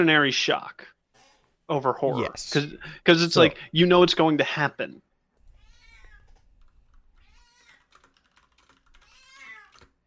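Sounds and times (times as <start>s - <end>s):
speech: 0.0s - 0.9s, 1.7s - 5.0s
cat meowing: 5.4s - 6.5s, 7.2s - 7.9s, 9.0s - 10.0s
keyboard typing: 6.2s - 10.0s.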